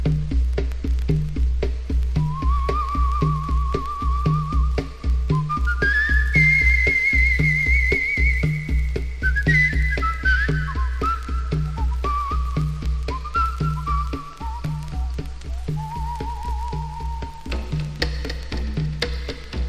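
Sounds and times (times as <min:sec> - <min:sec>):
bongos: 0:00.0 - 0:19.6
whistle: 0:02.2 - 0:17.9.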